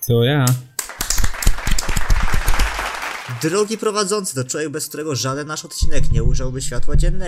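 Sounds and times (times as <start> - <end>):
speech: 0.1 - 0.7, 3.3 - 7.2
small group applauding: 0.5 - 3.9.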